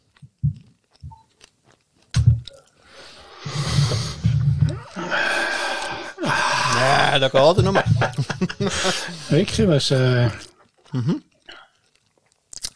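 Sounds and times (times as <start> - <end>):
wet lip smacking and chewing: 0.0 - 2.7, 10.4 - 12.7
laughter: 4.7 - 10.5
speech: 6.8 - 11.3.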